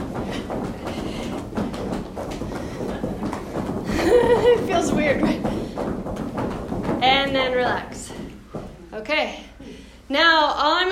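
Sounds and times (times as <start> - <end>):
crowd stomping feet on a hard floor: 0.0 - 9.2
laughter: 3.8 - 5.4
speech: 4.5 - 5.4, 7.0 - 7.9, 9.0 - 9.4, 10.1 - 10.9.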